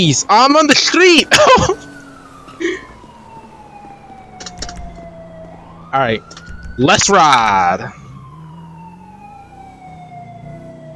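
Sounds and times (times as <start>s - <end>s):
speech: 0.0s - 1.9s, 5.9s - 8.0s
police car siren wailing in a driving video game: 0.0s - 10.9s
brief thumps: 4.4s - 5.1s, 6.3s - 6.8s.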